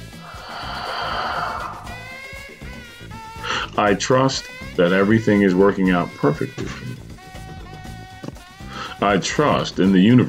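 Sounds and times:
deep breath in and out: 0.0s - 2.6s
speech: 3.8s - 6.8s, 9.0s - 10.2s.

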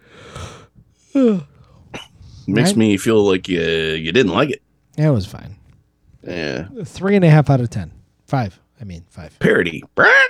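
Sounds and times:
person yawning: 0.1s - 2.0s, 6.2s - 6.8s
speech: 1.2s - 1.5s, 2.5s - 5.6s, 6.2s - 10.2s.

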